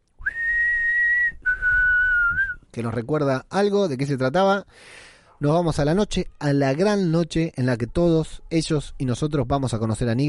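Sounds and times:
whistled tune: 0.2 - 2.6
speech: 2.8 - 10.2.

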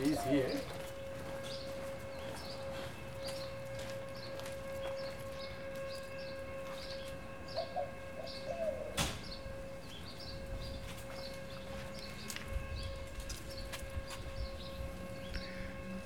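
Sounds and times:
birds chirping at a distance with echo: 0.0 - 16.0
speech: 0.1 - 0.8
sharp knock: 9.0 - 9.3.

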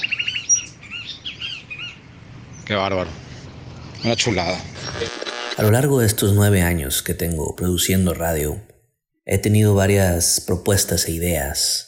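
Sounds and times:
birds singing and chirping: 0.0 - 5.0
soft steady outdoor background: 0.0 - 11.8
speech: 2.7 - 3.2, 4.0 - 8.7, 9.3 - 11.8.

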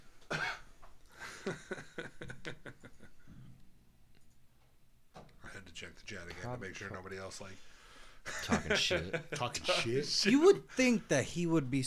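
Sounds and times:
person coughing sharply and roughly: 0.3 - 0.7
laughter: 1.2 - 3.2, 8.3 - 10.2
speech: 1.5 - 1.7, 5.8 - 7.8, 8.5 - 11.8.

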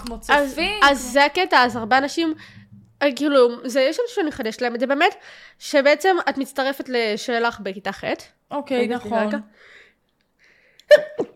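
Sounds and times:
speech: 0.0 - 9.8, 10.9 - 11.3
person sneezing: 10.9 - 11.3.

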